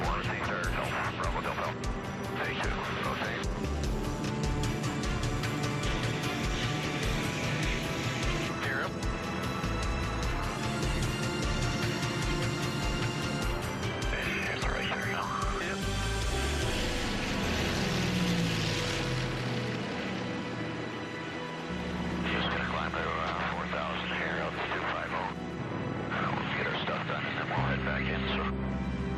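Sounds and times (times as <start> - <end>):
voices talking: 0.0 - 3.6, 7.5 - 9.1, 13.2 - 16.2, 22.0 - 25.4, 26.0 - 28.6
piston engines of a 215 airplane roaring through takeoff below minus 20: 0.0 - 29.1.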